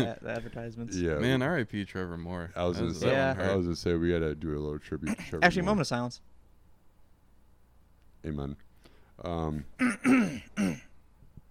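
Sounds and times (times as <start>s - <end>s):
speech: 0.0s - 6.3s, 8.2s - 10.9s
person clearing throat: 9.8s - 11.0s.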